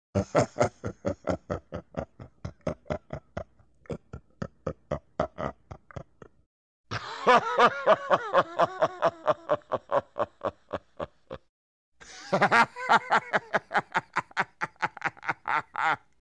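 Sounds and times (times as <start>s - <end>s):
demented laugh: 0.2s - 16.1s.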